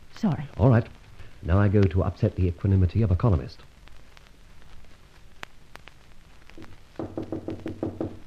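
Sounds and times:
faint hiss: 0.0 - 8.2
speech: 0.2 - 3.7
urgent knocking on a door: 7.0 - 8.2.

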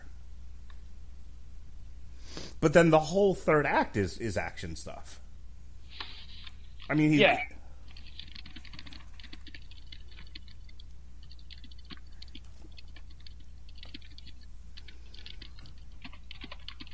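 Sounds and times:
low constant hum: 0.0 - 16.9
speech: 2.6 - 5.2, 6.9 - 7.6
typing on a computer keyboard: 7.9 - 16.9.

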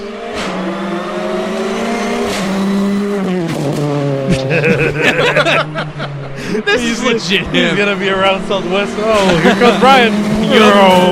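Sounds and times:
turbocharged rally car engine accelerating hard and shifting gears: 0.0 - 11.1
laughter: 4.2 - 11.1
speech: 4.3 - 11.1.

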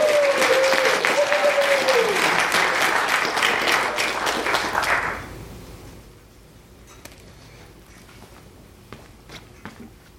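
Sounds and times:
audience applause: 0.0 - 5.3.

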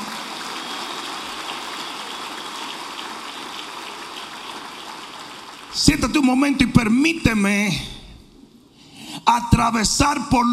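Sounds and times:
large audience applauding during a sermon: 0.0 - 6.8
speech: 5.7 - 8.0, 9.3 - 10.5.

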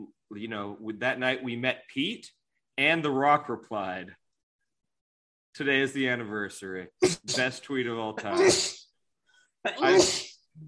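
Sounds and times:
speech: 0.4 - 4.2, 5.6 - 8.8, 9.6 - 10.6
loud sneeze: 7.0 - 7.5, 8.2 - 8.9, 9.7 - 10.5.

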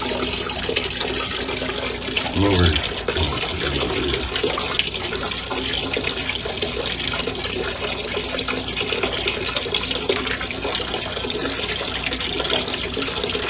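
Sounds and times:
hot water gushing into a bathtub: 0.0 - 13.4
person muttering a word: 2.3 - 4.4
speech: 2.4 - 3.0.

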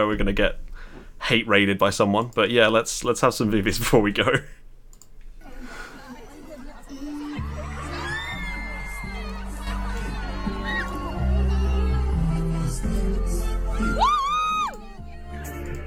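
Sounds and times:
speech: 0.0 - 0.6, 1.2 - 4.6
laughter: 5.5 - 12.6
large festival crowd cheering and whooping at a concert: 7.1 - 15.4
loud concert music with a heavy stepping bassline: 7.4 - 14.1.

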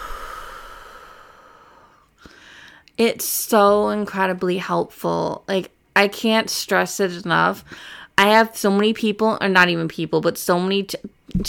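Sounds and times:
sharp breath catch: 0.0 - 2.8
slow deep breath drawn in and let out: 0.0 - 2.8, 7.6 - 8.1
speech: 3.0 - 11.4.

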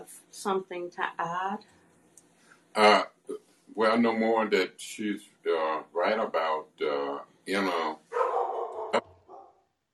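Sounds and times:
speech: 0.1 - 1.8, 2.8 - 8.0
dogs barking: 8.1 - 9.6.

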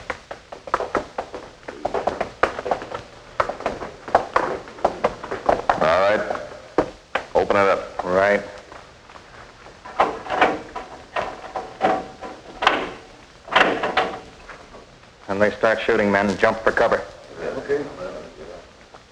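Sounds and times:
voices: 1.6 - 13.1, 15.2 - 19.0
heavy steel door clanking and grinding open: 9.8 - 14.9
speech: 15.4 - 18.0.

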